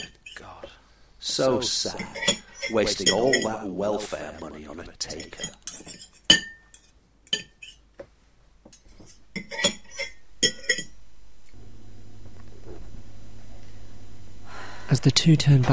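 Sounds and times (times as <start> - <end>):
speech: 1.2 - 6.0, 15.0 - 15.7
crockery and cutlery clattering into a sink: 2.0 - 3.6, 4.2 - 7.8, 8.8 - 10.9.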